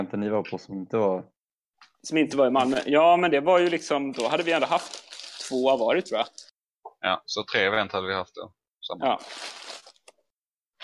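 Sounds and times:
speech: 0.0 - 1.4, 2.0 - 6.4, 7.0 - 9.6
paper being crumpled: 2.3 - 6.5, 9.2 - 10.2.

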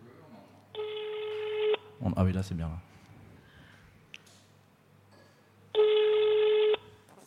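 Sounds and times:
faint hum: 0.0 - 7.2
telephone ring tone over a speakerphone: 0.8 - 1.8, 5.8 - 6.9
speech: 2.0 - 3.0.

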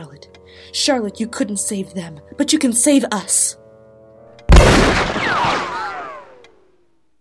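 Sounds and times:
speech: 0.6 - 3.6
pistol shot: 4.5 - 6.4
whining tones sliding downward in pistol shot decay: 5.2 - 6.9.

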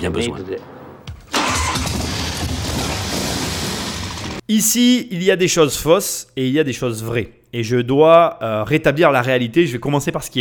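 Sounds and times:
speech: 0.0 - 0.8, 4.5 - 10.4
Harley-Davidson V-twin motorcycle engine cranking and starting: 1.3 - 4.4.

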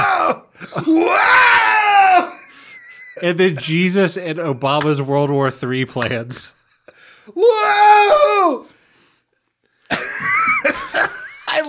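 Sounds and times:
person screeching in imitation of an eagle's cry: 0.0 - 2.5, 7.4 - 8.7
speech: 0.3 - 1.4, 3.2 - 8.7, 9.9 - 11.6
laughter: 2.2 - 3.9, 9.9 - 11.6.

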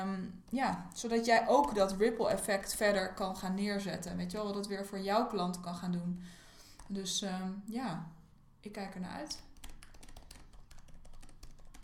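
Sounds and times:
speech: 0.0 - 9.5
typing on a computer keyboard: 9.4 - 11.8.

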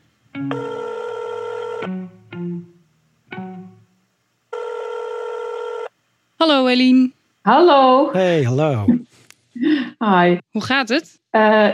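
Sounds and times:
telephone ringing as a call is placed: 0.5 - 1.9, 4.5 - 5.9
speech: 6.4 - 9.0, 10.0 - 11.7.

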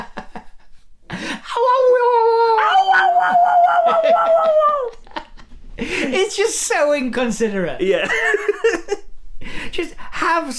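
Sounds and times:
man in audience howling: 1.5 - 5.0
laughter: 3.0 - 6.1, 8.0 - 9.0
speech: 6.3 - 8.4, 9.8 - 10.5.

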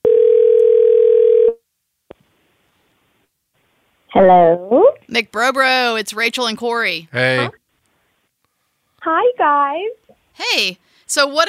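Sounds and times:
telephone dial tone while placing a call: 0.0 - 1.5
speech: 4.2 - 7.6, 9.0 - 11.4.

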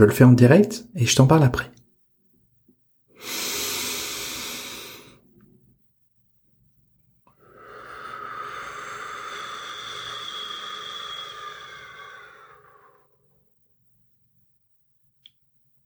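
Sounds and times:
speech: 0.0 - 1.8
slow deep abdominal breathing, inhale and exhale: 3.2 - 5.6, 7.3 - 13.4.

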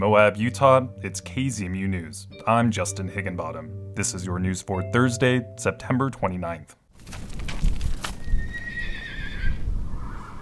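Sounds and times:
speech: 0.0 - 7.2
horse whinnying near a corral: 8.2 - 10.4.

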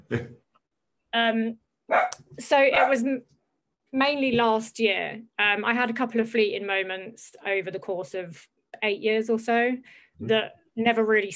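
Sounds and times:
speech: 0.1 - 0.4, 1.1 - 3.3, 3.9 - 11.3
dog barking: 1.9 - 3.0.

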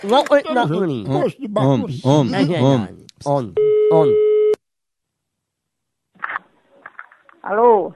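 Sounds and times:
people talking: 0.0 - 4.2
telephone call tone: 3.6 - 4.6.

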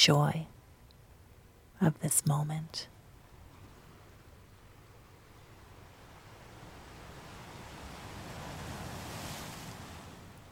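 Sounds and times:
speech: 0.0 - 0.5, 1.8 - 2.9
soft breeze: 0.0 - 10.4
ocean surf rushing onto a shore: 3.2 - 10.4.

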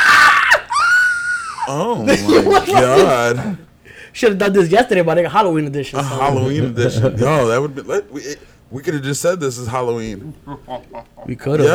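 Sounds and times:
person screaming in fright: 0.0 - 1.8
laughter: 0.0 - 3.8, 6.0 - 11.7
speech: 1.7 - 11.7.

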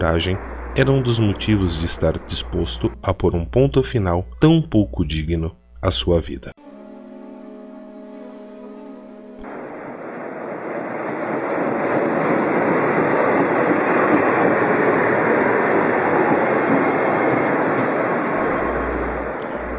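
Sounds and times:
train rumbling past on the rails: 0.0 - 4.6, 9.4 - 19.7
speech: 0.0 - 6.8.

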